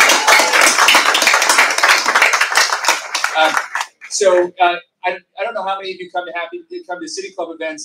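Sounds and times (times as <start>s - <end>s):
audience applauding: 0.0s - 4.2s
speech: 4.2s - 7.8s.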